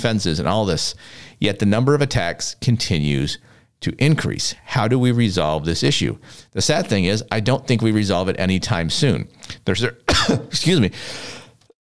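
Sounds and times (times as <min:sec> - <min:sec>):
speech: 0:00.0 - 0:11.4
harsh throaty coughing fit: 0:10.1 - 0:10.7
long breathy exhale: 0:11.0 - 0:11.6.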